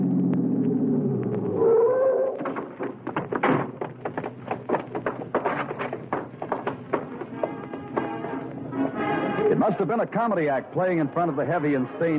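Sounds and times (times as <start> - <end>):
car engine rumbling pulling into an alley to a theater's stage door: 0.0 - 9.5
speech: 9.6 - 12.1.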